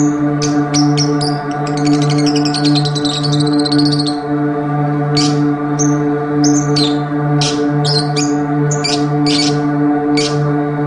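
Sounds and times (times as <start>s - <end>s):
Oriental magpie-robin sharp chirps and whistles: 0.0s - 4.2s, 5.2s - 9.6s
Oriental magpie-robin singing a long rapid warbling trill: 0.0s - 4.4s, 5.1s - 10.6s
continuous low hum: 0.0s - 10.8s.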